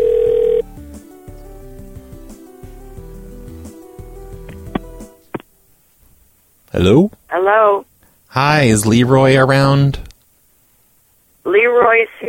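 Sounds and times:
telephone dial tone: 0:00.0 - 0:00.6
low humming telephone line: 0:00.0 - 0:00.7
speech: 0:06.8 - 0:10.1.

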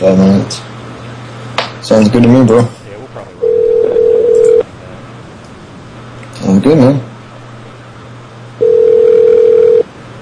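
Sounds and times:
speech: 0:00.0 - 0:00.7, 0:01.8 - 0:02.8, 0:06.6 - 0:07.1
faint low hum: 0:00.0 - 0:10.2
telephone ringback tone of an unanswered call: 0:03.4 - 0:04.6, 0:08.6 - 0:09.9.

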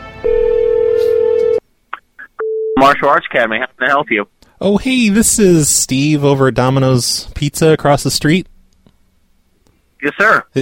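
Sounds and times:
telephone ringing on an outgoing call: 0:00.2 - 0:01.6
speech: 0:02.8 - 0:08.5, 0:10.0 - 0:10.6.

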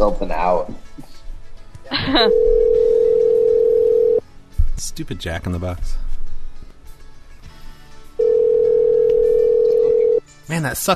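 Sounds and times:
speech: 0:00.0 - 0:00.9, 0:01.9 - 0:03.1, 0:04.8 - 0:06.1, 0:10.5 - 0:10.9
telephone dial tone while dialing a number: 0:02.3 - 0:04.2, 0:08.2 - 0:10.2.

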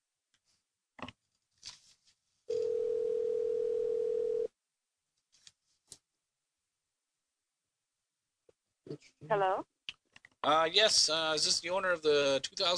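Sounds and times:
telephone ringback tone: 0:02.5 - 0:04.5
speech: 0:09.3 - 0:09.7, 0:10.4 - 0:12.7.

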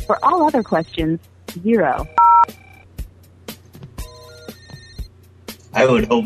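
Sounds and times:
speech: 0:00.1 - 0:02.6, 0:05.8 - 0:06.2
telephone ringing with an electronic ringtone for an incoming call: 0:02.0 - 0:02.9, 0:04.0 - 0:05.1.

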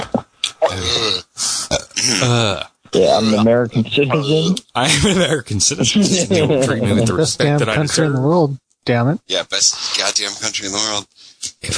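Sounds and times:
breathy bursts: 0:00.4 - 0:02.8, 0:09.7 - 0:10.3, 0:11.1 - 0:11.5
loud drawn-out voiced burp: 0:00.6 - 0:03.5
speech: 0:00.7 - 0:11.7
laughter: 0:04.8 - 0:07.4.

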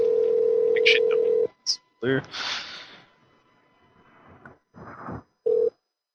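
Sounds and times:
telephone dial tone as a call is placed: 0:00.0 - 0:01.5
person talking: 0:00.8 - 0:02.5.

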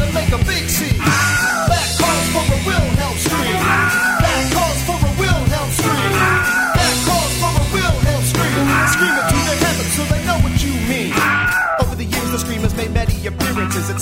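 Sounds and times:
dense sustained music-like backdrop: 0:00.0 - 0:14.0
stock scream sound effect: 0:00.9 - 0:07.5, 0:08.4 - 0:09.6, 0:11.0 - 0:12.0.

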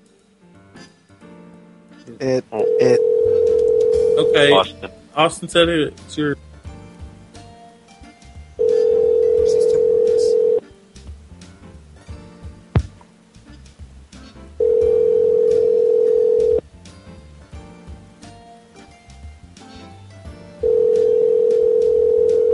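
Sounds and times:
speech: 0:02.1 - 0:03.1, 0:04.2 - 0:06.4
telephone line tone: 0:02.6 - 0:04.3, 0:08.6 - 0:10.6, 0:14.6 - 0:16.6, 0:20.6 - 0:22.5.

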